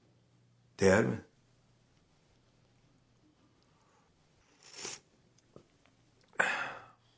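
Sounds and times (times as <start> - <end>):
speech: 0.8 - 1.3
airy slurps of hot coffee: 4.6 - 5.1.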